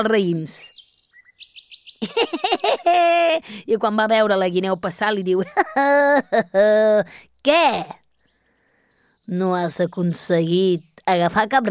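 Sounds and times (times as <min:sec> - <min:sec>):
speech: 0:00.0 - 0:00.8, 0:01.4 - 0:08.0, 0:09.3 - 0:11.6
small bird chirping: 0:00.0 - 0:02.4, 0:03.4 - 0:05.4, 0:07.5 - 0:11.6
laughter: 0:02.0 - 0:03.4.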